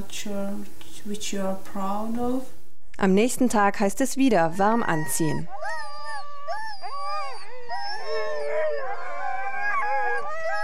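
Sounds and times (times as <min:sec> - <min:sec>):
speech: 0:00.0 - 0:05.6
sled dog huskies howling: 0:04.9 - 0:10.6.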